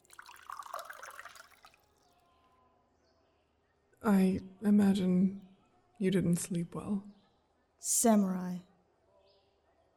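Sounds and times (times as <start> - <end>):
sake poured from a jug into clay cups: 0.0 - 2.2
speech: 4.0 - 5.4, 6.0 - 7.2, 7.8 - 8.7.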